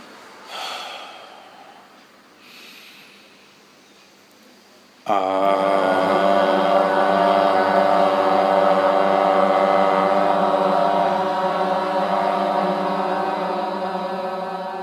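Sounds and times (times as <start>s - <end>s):
soft airy breaths during a breathing exercise: 0.0s - 3.8s
loud steady voiced tone: 5.1s - 14.8s.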